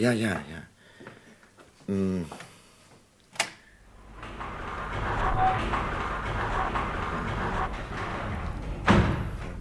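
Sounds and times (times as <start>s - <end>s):
window blind being lowered and shut: 3.9s - 9.5s.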